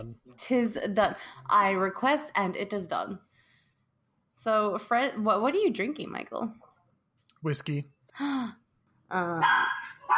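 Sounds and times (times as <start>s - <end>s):
speech: 0.0s - 3.3s, 4.4s - 6.6s, 7.4s - 10.1s
small Pomeranian dogs barking in high-pitched yaps: 9.4s - 10.1s.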